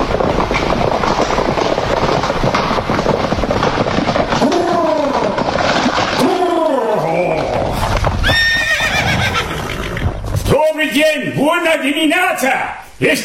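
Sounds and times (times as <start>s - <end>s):
horse hooves clattering on hard ground: 0.0s - 11.8s
carriage horses whinnying: 4.3s - 10.3s
speech: 12.4s - 13.2s.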